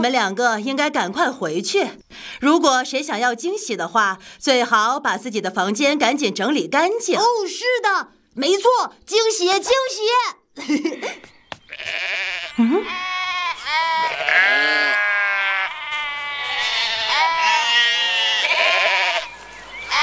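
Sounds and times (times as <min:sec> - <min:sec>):
speech: 0:00.0 - 0:13.1
sheep bleating: 0:11.7 - 0:20.0.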